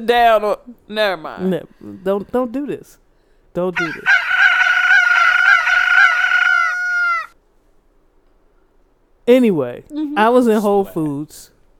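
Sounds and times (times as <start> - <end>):
speech: 0.0 - 3.0, 3.6 - 4.3, 9.3 - 11.5
rooster crowing: 3.8 - 7.4.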